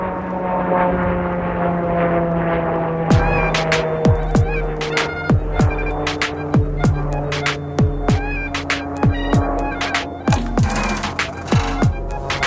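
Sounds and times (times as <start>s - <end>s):
airplane engine drone overhead: 0.0s - 12.4s
sharp repeated thumps: 3.1s - 12.4s.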